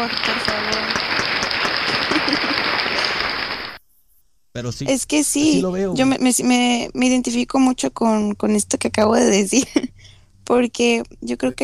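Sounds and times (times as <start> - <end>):
speech: 0.0 - 0.6, 4.6 - 11.6
applause with many hands clapping: 0.0 - 3.8
laughter: 0.0 - 3.8.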